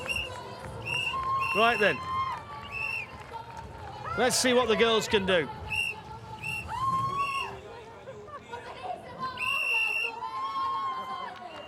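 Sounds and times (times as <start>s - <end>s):
sharp sustained shrill whistles: 0.0s - 2.0s, 2.6s - 3.1s, 5.7s - 7.6s, 9.4s - 10.2s
lively crowd of spectators shrieking and cheering: 0.8s - 2.8s, 6.4s - 7.6s, 9.3s - 11.6s
speech: 1.5s - 2.1s, 4.2s - 5.6s.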